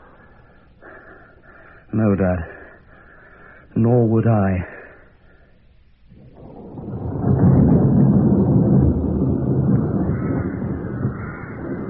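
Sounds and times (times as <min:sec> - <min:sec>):
speech: 0:02.0 - 0:02.6, 0:03.8 - 0:04.8
deep rolling rumble of thunder: 0:06.1 - 0:11.8
steady wind roaring: 0:06.1 - 0:11.8.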